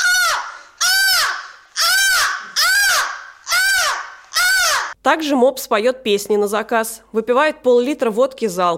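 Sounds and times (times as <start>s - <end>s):
person imitating harsh seagull calls: 0.0s - 5.0s
speech: 5.0s - 8.7s.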